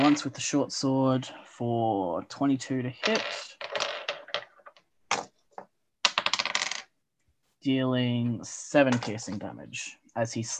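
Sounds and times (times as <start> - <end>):
dice clattering and rolling on a hard table: 0.0 - 0.3, 3.0 - 6.9, 8.9 - 9.4
speech: 0.1 - 3.7, 7.6 - 10.5.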